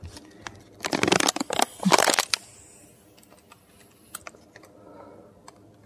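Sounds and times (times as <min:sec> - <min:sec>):
Capri-Sun drink pouch crackling as it is squeezed: 0:00.4 - 0:02.4.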